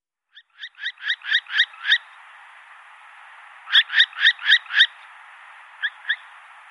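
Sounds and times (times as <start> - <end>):
northern hawk-owl calling: 0.3 - 2.2, 3.7 - 5.0, 5.8 - 6.4.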